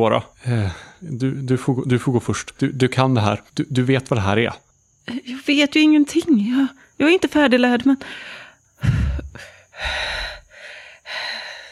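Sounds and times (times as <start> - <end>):
speech: 0.0 - 10.2
deep breaths: 0.4 - 1.0, 8.0 - 11.6.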